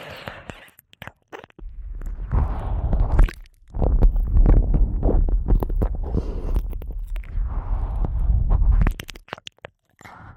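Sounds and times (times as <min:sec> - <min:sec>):
wet mouth sounds of ear eating: 0:00.0 - 0:10.3
biting clicks: 0:00.2 - 0:02.2, 0:03.1 - 0:07.4, 0:08.8 - 0:10.2.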